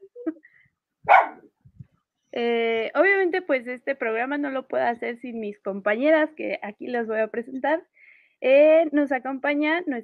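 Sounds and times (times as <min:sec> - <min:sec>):
dog barking: 0:01.1 - 0:01.5
speech: 0:02.4 - 0:10.0.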